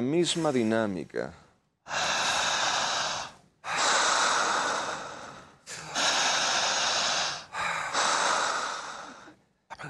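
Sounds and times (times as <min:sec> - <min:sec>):
speech: 0:00.0 - 0:02.1
forceful inhaling through the mouth: 0:01.9 - 0:09.4.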